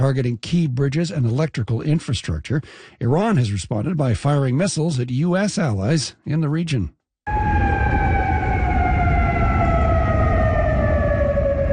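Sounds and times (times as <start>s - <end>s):
speech: 0.0s - 7.6s
air raid sirens wailing in the Persian Gulf region: 7.3s - 11.7s.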